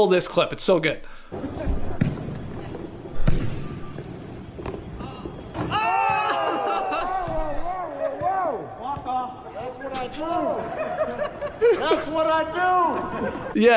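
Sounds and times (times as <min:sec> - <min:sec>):
speech: 0:00.0 - 0:01.8, 0:10.1 - 0:13.7
ball bouncing on a hard gym floor: 0:01.6 - 0:04.9, 0:08.1 - 0:09.9
crowd cheering and shouting: 0:05.6 - 0:08.8
laughter: 0:06.2 - 0:07.9, 0:09.8 - 0:13.7.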